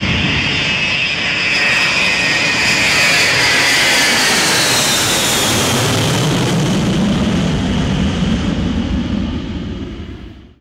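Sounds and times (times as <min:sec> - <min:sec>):
Boeing 707 jet airliner engines: 0:00.0 - 0:10.5.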